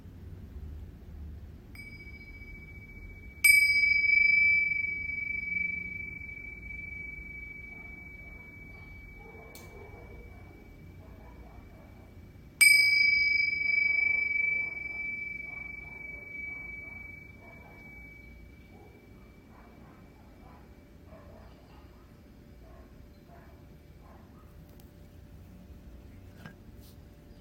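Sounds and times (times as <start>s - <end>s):
Tibetan singing bowl struck and ringing: 1.7s - 20.6s.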